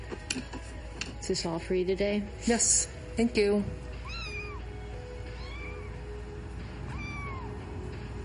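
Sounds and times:
steady hum of indoor noise: 0:00.0 - 0:08.2
speech: 0:01.3 - 0:03.8
kitten meowing high and thin: 0:04.0 - 0:04.7, 0:05.3 - 0:06.0, 0:06.9 - 0:07.6.

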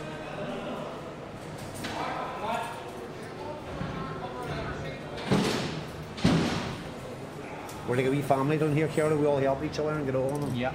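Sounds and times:
hubbub of indistinct voices in a prison wing: 0:00.0 - 0:10.7
heavy steel cell door slams: 0:05.2 - 0:07.0
speech: 0:07.9 - 0:10.7.

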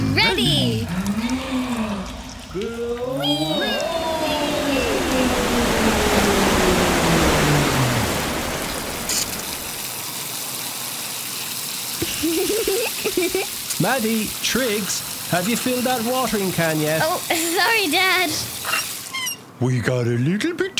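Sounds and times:
loud sustained rush of gushing water: 0:00.0 - 0:19.4
deep wavering whale-like moans: 0:00.8 - 0:09.1
speech: 0:13.2 - 0:18.8, 0:19.6 - 0:20.7.

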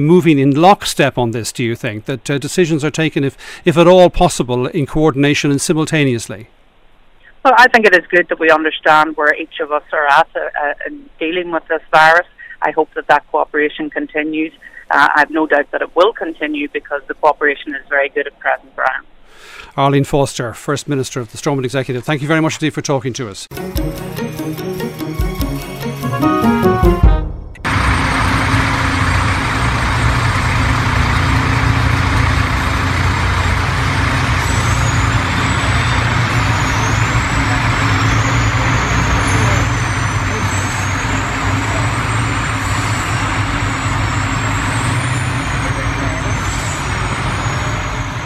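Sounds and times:
speech: 0:00.0 - 0:06.6, 0:07.4 - 0:24.7
short burst of a tonal sound: 0:23.5 - 0:48.2
military convoy of heavy trucks driving past in Bergamo, northern Italy: 0:26.2 - 0:48.2
thin high squeals: 0:27.7 - 0:48.2.

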